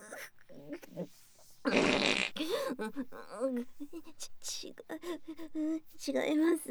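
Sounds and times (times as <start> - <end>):
loud raspy fart: 1.7 - 2.4
woman talking softly: 2.4 - 6.6.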